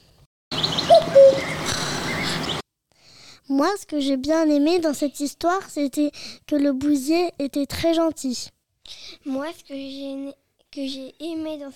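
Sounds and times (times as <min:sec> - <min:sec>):
cuckoo calling: 0:00.5 - 0:02.6
faint birds chirping outdoors: 0:00.5 - 0:02.6
speech: 0:03.5 - 0:11.7.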